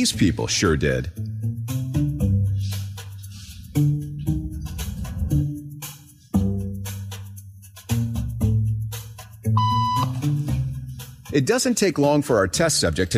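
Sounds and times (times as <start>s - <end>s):
speech: 0.0s - 1.2s, 11.4s - 13.1s
music with deep sustained low notes: 0.0s - 13.1s
short electronic beep tone: 9.6s - 10.2s.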